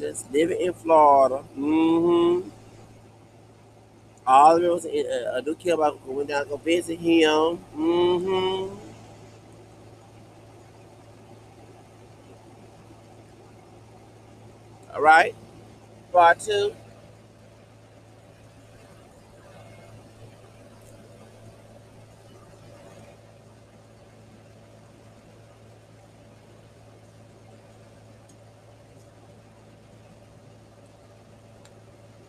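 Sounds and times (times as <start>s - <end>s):
speech: 0.0s - 2.6s, 4.3s - 8.8s, 15.0s - 15.4s, 16.1s - 16.8s
truck engine idling: 0.0s - 13.0s, 14.6s - 23.4s
faint noise: 0.0s - 32.2s.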